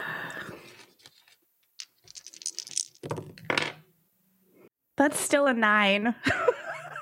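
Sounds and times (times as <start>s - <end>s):
dice rolling on a tabletop: 1.8s - 3.8s
speech: 5.0s - 6.6s.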